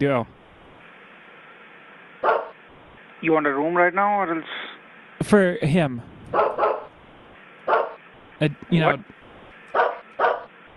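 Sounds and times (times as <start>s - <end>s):
speech: 0.0s - 0.4s, 3.2s - 4.6s, 5.2s - 6.8s, 8.4s - 9.2s
dog barking in a room: 2.2s - 2.6s, 6.3s - 6.9s, 7.7s - 8.0s, 9.7s - 10.6s.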